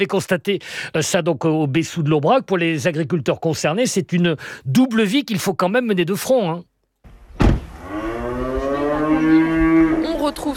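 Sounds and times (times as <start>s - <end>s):
speech: 0.0s - 6.7s, 10.3s - 10.5s
brief knock: 7.4s - 7.7s
cow mooing on a farm in the Aubrac: 7.8s - 10.4s.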